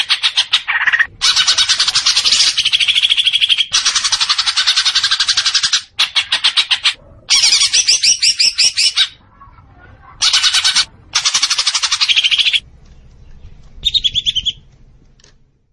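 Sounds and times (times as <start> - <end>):
leafbird song with fast chattering notes: 0.0 - 9.2, 10.2 - 14.7.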